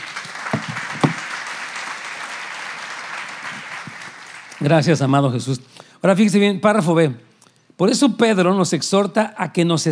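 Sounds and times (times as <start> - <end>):
congregation applauding: 0.0 - 5.0
speech: 4.6 - 9.9.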